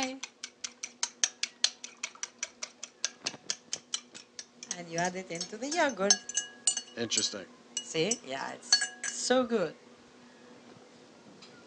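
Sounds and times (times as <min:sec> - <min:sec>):
eggs cracked and broken in a kitchen: 0:00.0 - 0:09.3
speech: 0:04.8 - 0:06.3, 0:07.0 - 0:09.8.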